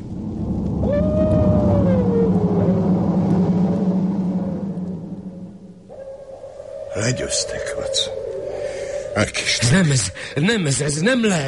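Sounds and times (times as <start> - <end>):
heavy low rumbling background: 0.0 - 11.1
large dog howling: 0.8 - 3.8, 5.9 - 9.2
speech: 7.1 - 8.2, 9.2 - 11.4.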